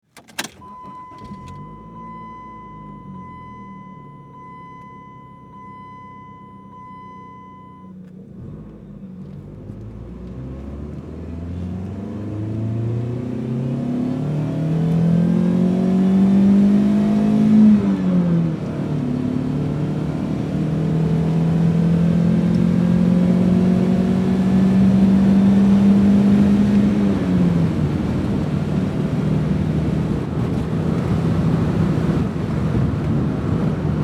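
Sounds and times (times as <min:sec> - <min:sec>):
compact car starting and driving heard from the interior: 0:00.1 - 0:34.0.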